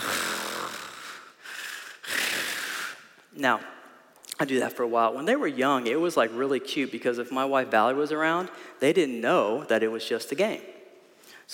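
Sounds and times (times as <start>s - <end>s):
man fake snoring: 0.0s - 3.0s
speech: 3.4s - 3.7s, 4.4s - 10.8s.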